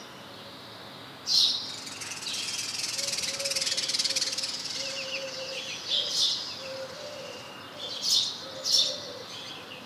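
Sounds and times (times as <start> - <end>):
house sparrow Passer domesticus chirps: 1.3 - 9.5.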